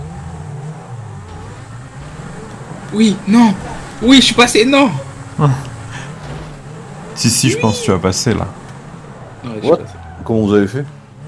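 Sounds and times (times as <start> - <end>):
sports car engine revving in a video game: 0.0 - 11.2
speech: 2.9 - 5.7, 7.2 - 8.6, 9.4 - 11.0.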